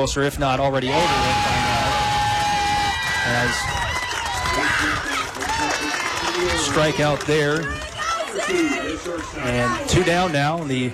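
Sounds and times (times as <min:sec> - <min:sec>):
speech: 0:00.0 - 0:01.7, 0:03.2 - 0:03.9, 0:06.4 - 0:10.9
man giving play-by-play commentary: 0:00.0 - 0:02.2, 0:04.6 - 0:07.7, 0:08.5 - 0:10.9
baseball fans cheering from packed standing-room stands: 0:00.8 - 0:10.9.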